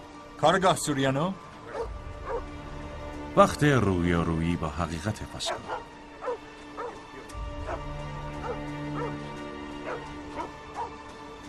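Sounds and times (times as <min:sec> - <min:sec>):
speech: 0:00.4 - 0:01.4, 0:03.4 - 0:05.9
dog barking in short yelps: 0:01.7 - 0:02.5, 0:05.4 - 0:07.0, 0:07.6 - 0:09.2, 0:09.8 - 0:11.0.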